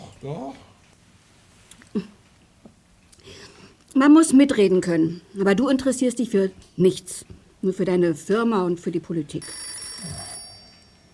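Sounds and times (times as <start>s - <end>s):
speech: 0.2s - 0.7s, 2.0s - 2.2s, 4.0s - 10.2s
telephone bell ringing: 9.4s - 11.1s.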